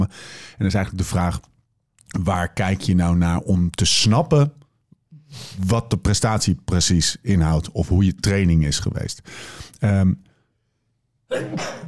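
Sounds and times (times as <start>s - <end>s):
speech: 0.0s - 1.5s, 2.1s - 4.6s, 5.3s - 10.3s, 11.3s - 11.8s
single sharp sneeze: 11.3s - 11.8s.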